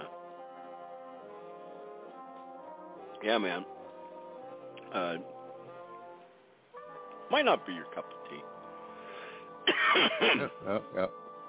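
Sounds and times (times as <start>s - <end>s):
speech: 3.2s - 3.8s, 4.9s - 5.4s, 7.3s - 8.6s, 9.8s - 11.2s
person coughing with rasping hacks: 9.6s - 10.6s
throat clearing: 9.7s - 10.7s.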